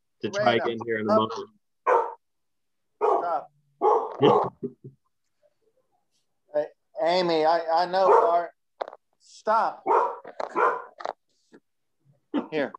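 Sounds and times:
speech: 0.2s - 1.6s, 4.2s - 5.0s, 6.6s - 8.6s, 9.2s - 10.8s, 12.5s - 12.7s
service dog barking into a microphone: 1.8s - 2.2s, 3.0s - 4.6s, 8.0s - 8.5s, 9.8s - 11.0s.

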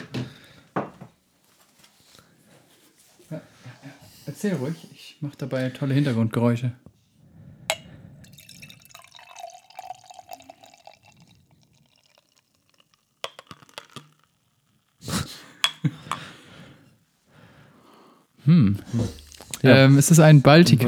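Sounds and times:
speech: 3.3s - 3.5s, 4.4s - 6.8s, 19.6s - 20.8s
sharp glass clinks: 7.7s - 12.4s
beer trickling and splashing into a glass: 7.7s - 15.0s.

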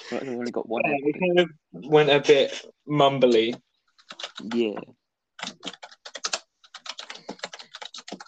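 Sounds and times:
speech: 0.1s - 5.9s
rapid forceful typing on a computer keyboard: 3.9s - 4.7s, 5.4s - 8.2s.

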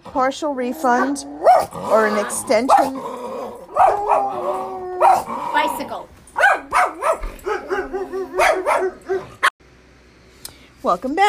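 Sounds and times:
speech: 0.1s - 3.2s, 10.8s - 11.2s
dogs barking and yipping in excited high-pitched bursts: 0.7s - 9.5s.

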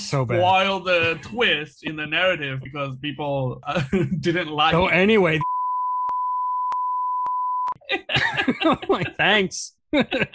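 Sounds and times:
speech: 0.1s - 5.6s, 8.0s - 10.3s
laughter: 3.7s - 4.2s, 7.9s - 10.3s
high-pitched censor beep covering a movie spoiler: 5.4s - 7.8s.

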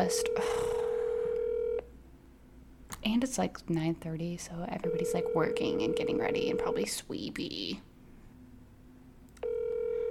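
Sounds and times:
speech: 0.0s - 0.6s, 3.0s - 7.9s
telephone line tone of an unanswered call: 0.0s - 1.9s, 4.8s - 6.9s, 9.4s - 10.0s
faint noise: 0.0s - 10.0s.

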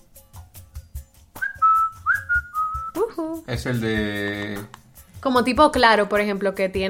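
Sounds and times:
person whistling a bright melodic jingle imitating a brand sound logo: 1.4s - 3.2s
speech: 3.2s - 6.8s.

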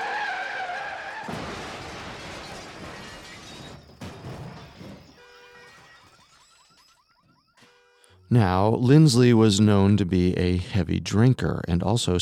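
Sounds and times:
car tires squealing: 0.0s - 3.6s
car skidding over a loose surface: 0.0s - 5.2s
debris scattering: 0.0s - 7.0s
car crash: 0.0s - 7.1s
speech: 8.3s - 12.1s.

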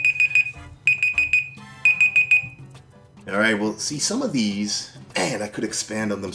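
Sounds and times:
timer beeping with high piercing electronic tones: 0.0s - 2.7s
speech: 3.3s - 6.3s.

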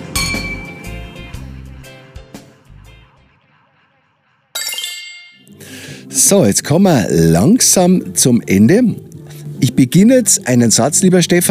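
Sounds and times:
glasses clinking in a toast: 4.6s - 5.6s
speech: 6.2s - 11.5s.

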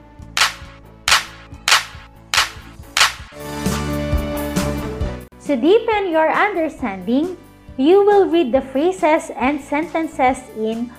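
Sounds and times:
sharp hand claps: 0.4s - 3.4s
light music: 0.4s - 3.8s, 4.6s - 10.9s
speech: 5.5s - 10.9s.

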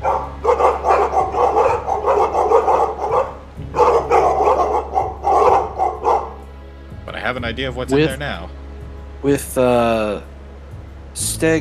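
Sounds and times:
chorus of many sled dogs baying, barking, howling and yelping inside a short hut: 0.0s - 6.6s
speech: 7.4s - 8.6s, 9.2s - 10.3s, 11.2s - 11.5s.

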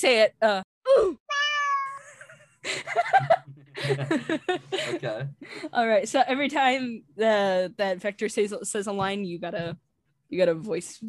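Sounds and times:
speech: 0.0s - 1.2s, 2.6s - 11.0s
person imitating cat meowing: 1.3s - 2.0s
person breathy laughing and chuckling: 1.9s - 5.3s.

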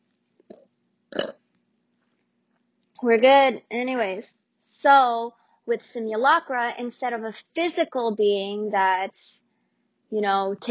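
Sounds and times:
faint steady hum: 0.0s - 10.6s
person burping close to the microphone: 0.5s - 1.4s
speech: 3.0s - 9.4s, 10.1s - 10.6s.

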